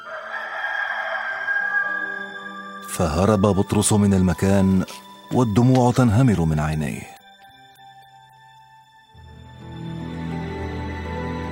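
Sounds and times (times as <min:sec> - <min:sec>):
rooster crowing: 0:00.0 - 0:02.7
speech: 0:02.9 - 0:07.1.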